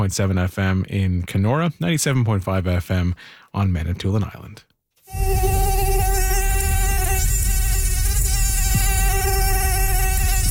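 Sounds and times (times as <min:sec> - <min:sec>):
speech: 0:00.0 - 0:05.2
mosquito whining in summer in Northern Ontario: 0:05.0 - 0:10.5.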